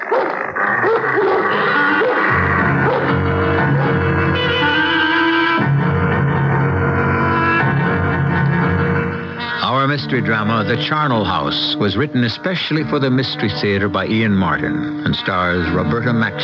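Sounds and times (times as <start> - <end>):
Doberman Pinschers barking, snarling and growling: 0.0 - 9.3
speech: 10.1 - 16.4.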